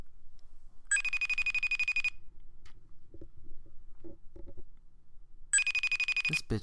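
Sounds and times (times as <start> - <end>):
FaceTime video call ringtone: 0.9 - 2.2, 5.6 - 6.5.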